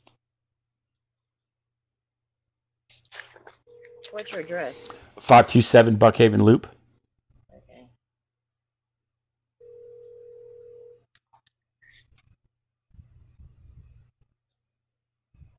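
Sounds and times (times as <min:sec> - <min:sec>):
speech: 0:03.7 - 0:06.8
telephone dial tone from an outgoing call: 0:09.6 - 0:11.0.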